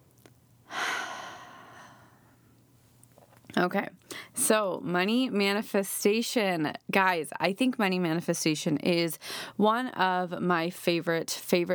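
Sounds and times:
slow deep breath during a guided breathing moment: 0:00.7 - 0:02.4
speech: 0:03.6 - 0:11.7.

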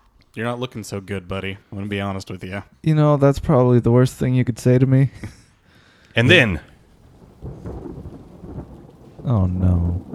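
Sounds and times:
speech: 0:00.4 - 0:05.4, 0:06.2 - 0:06.7, 0:09.3 - 0:10.1
steady rainfall: 0:06.2 - 0:10.1
low rolling thunder rumbling overhead: 0:06.3 - 0:10.1.

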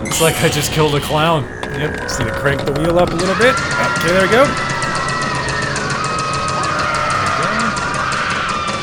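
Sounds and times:
steady rapid ticking: 0:00.0 - 0:08.8
speech: 0:00.1 - 0:04.8
crowd screaming and yelling: 0:03.1 - 0:08.8.

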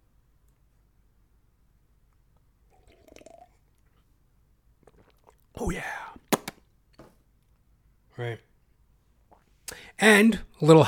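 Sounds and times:
slurping sip of hot tea: 0:02.7 - 0:04.1, 0:04.8 - 0:06.3
speech: 0:05.6 - 0:06.0, 0:08.2 - 0:08.5, 0:10.0 - 0:10.8.

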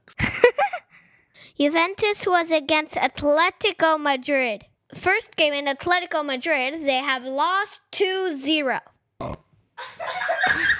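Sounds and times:
speech: 0:01.6 - 0:09.4
fart: 0:09.2 - 0:09.6
laughter: 0:09.8 - 0:10.7.

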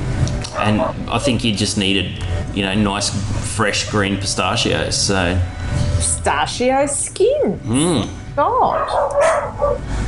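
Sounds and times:
speech: 0:00.6 - 0:10.0
dog barking: 0:08.7 - 0:09.8.

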